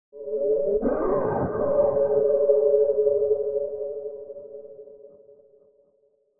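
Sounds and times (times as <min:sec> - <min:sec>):
space ambience: 0:00.2 - 0:05.0.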